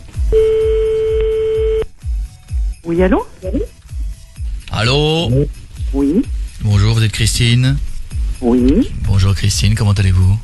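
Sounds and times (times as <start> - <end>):
telephone line tone as a call is placed: 0.3 - 1.9
speech: 2.9 - 3.7, 4.8 - 6.3, 7.0 - 10.4.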